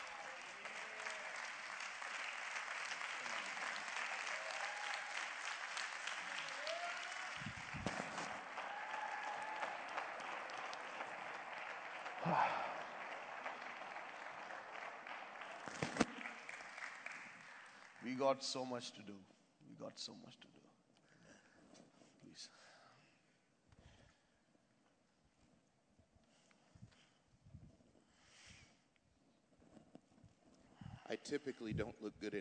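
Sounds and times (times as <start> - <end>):
large audience applauding at a church gathering honouring a pastor: 0.0 - 18.4
speech: 18.1 - 20.6, 31.2 - 32.3.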